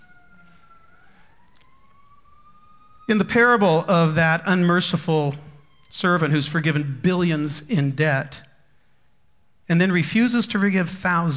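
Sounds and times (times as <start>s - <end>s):
emergency vehicle sirens passing by: 0.0s - 7.9s
speech: 3.1s - 8.5s, 9.7s - 11.3s.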